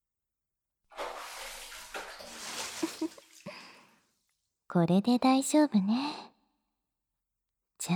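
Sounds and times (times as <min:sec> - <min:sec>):
hot water poured over body in bath: 0:00.9 - 0:04.0
speech: 0:04.7 - 0:06.3.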